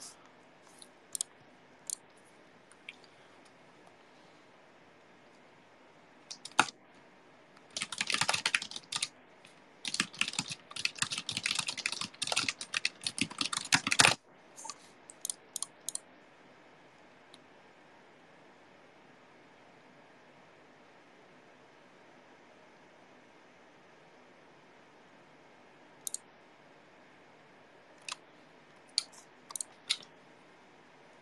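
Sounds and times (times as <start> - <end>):
rapid typing on a computer keyboard: 6.3 - 6.7, 7.7 - 9.1, 9.8 - 14.2, 15.1 - 16.0, 28.9 - 30.1.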